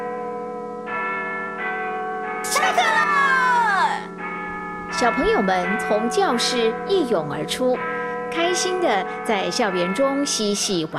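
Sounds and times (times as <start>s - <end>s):
school bell ringing for the end of class: 0.0s - 10.9s
speech: 5.0s - 10.9s.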